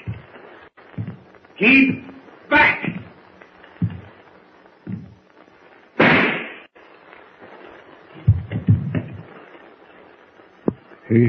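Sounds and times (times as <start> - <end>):
dull low thuds and bumps: 0.0 - 1.4, 3.8 - 4.2, 4.8 - 5.2, 8.2 - 9.3
speech: 1.6 - 2.9
rifle gunshot: 6.0 - 6.6.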